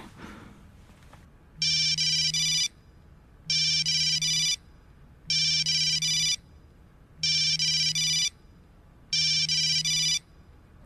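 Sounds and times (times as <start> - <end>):
telephone ringing with an electronic trill: 1.6 - 2.7, 3.5 - 4.6, 5.3 - 6.4, 7.3 - 8.3, 9.1 - 10.2.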